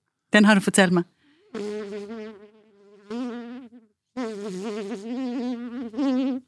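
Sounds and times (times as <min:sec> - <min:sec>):
speech: 0:00.3 - 0:02.1, 0:04.5 - 0:06.4
person imitating a buzzing fly with their voice: 0:01.4 - 0:06.4.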